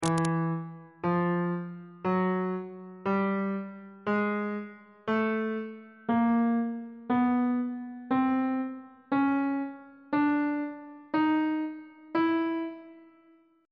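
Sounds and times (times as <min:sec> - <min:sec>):
chromatic scale of one octave of notes on bass clef: 0:00.0 - 0:13.4.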